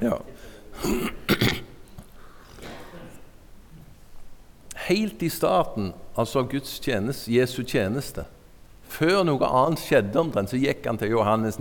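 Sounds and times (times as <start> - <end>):
speech: 0.0 - 1.2, 4.9 - 11.6
person clearing throat: 0.0 - 1.8, 2.5 - 3.3.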